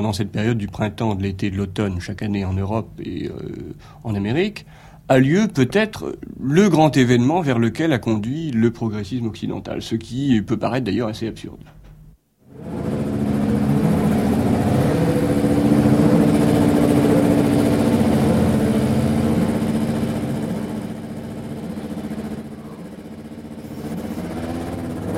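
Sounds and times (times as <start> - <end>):
speech: 0.0 - 11.8
Renault racing qualifying engine running while being tuned: 12.5 - 25.1.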